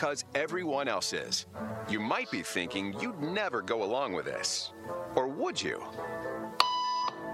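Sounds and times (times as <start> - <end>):
speech: 0.0 - 6.3
short sharp electronic beep: 6.6 - 7.2.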